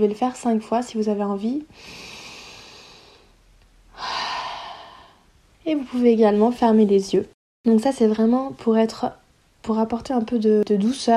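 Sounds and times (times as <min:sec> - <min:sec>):
speech: 0:00.0 - 0:02.1, 0:05.7 - 0:11.1
slow breathing in through the nose and out through the mouth in a relaxation exercise: 0:01.7 - 0:05.3.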